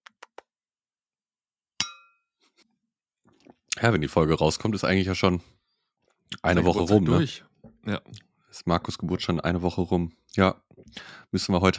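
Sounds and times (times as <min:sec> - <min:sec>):
glasses clinking in a toast: 0:01.8 - 0:02.2
speech: 0:03.8 - 0:05.6, 0:06.4 - 0:11.7.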